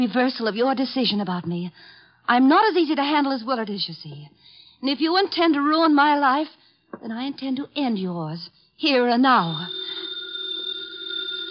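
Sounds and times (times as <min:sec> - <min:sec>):
speech: 0:00.0 - 0:09.9
house telephone bell ringing: 0:09.3 - 0:11.4.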